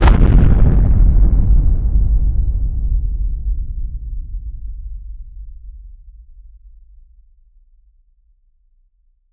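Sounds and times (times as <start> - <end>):
volcano erupting: 0.0 - 2.6.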